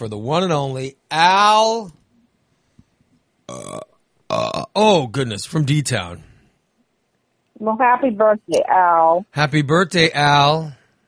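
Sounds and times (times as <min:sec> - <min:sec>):
speech: 0:00.0 - 0:02.0, 0:03.5 - 0:06.3, 0:07.6 - 0:10.8
loud drawn-out burps: 0:03.5 - 0:05.0.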